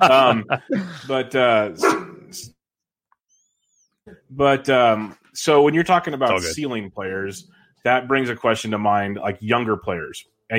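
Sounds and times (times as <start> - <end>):
laughter: 0.0 - 1.8
speech: 0.0 - 2.6, 4.1 - 10.5
dog barking excitedly: 1.8 - 2.2.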